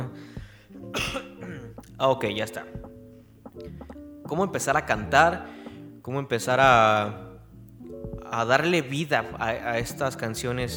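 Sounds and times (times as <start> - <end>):
person clearing throat: 0.9 - 1.7
person coughing: 0.9 - 1.7
speech: 2.0 - 2.8, 4.3 - 7.3, 8.3 - 10.7.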